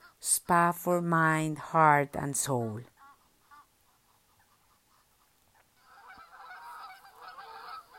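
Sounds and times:
soft outdoor background: 0.0s - 7.9s
speech: 0.2s - 2.9s
chorus of geese honking: 2.9s - 7.9s.

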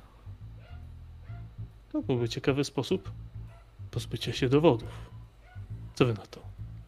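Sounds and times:
dog barking outside: 0.6s - 1.6s, 3.5s - 3.7s, 5.1s - 6.0s
speech: 1.9s - 3.3s, 3.9s - 5.2s, 6.0s - 6.5s.

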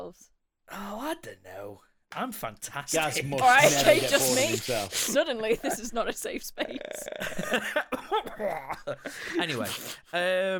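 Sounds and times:
speech: 0.1s - 10.5s
laughter: 3.0s - 10.0s
person coughing in short throaty bursts: 3.4s - 5.2s, 7.9s - 8.8s.

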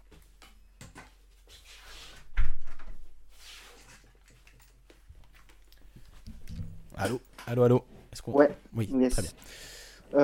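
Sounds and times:
soft rustling and shuffling: 0.0s - 9.4s
door closing with a solid thud: 2.4s - 3.0s
speech: 7.0s - 10.2s.

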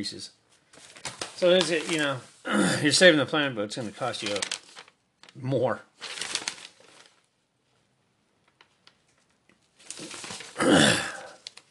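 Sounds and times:
speech: 0.0s - 0.4s, 1.4s - 4.6s, 5.4s - 6.1s
person clearing throat: 2.5s - 2.9s, 10.6s - 11.4s.

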